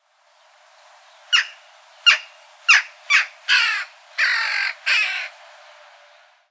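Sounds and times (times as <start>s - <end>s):
jackdaw calling: 1.3s - 5.4s.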